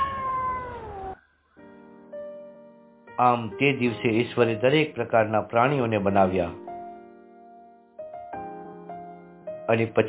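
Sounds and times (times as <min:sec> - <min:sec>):
cat meowing: 0:00.0 - 0:01.2
speech: 0:03.2 - 0:06.7, 0:09.7 - 0:10.0.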